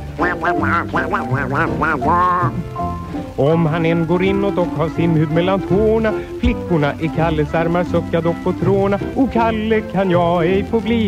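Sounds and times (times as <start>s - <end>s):
soft music: 0.0s - 11.0s
nasal cartoon duck voice quacking laugh: 0.2s - 2.7s
speech: 0.3s - 11.0s.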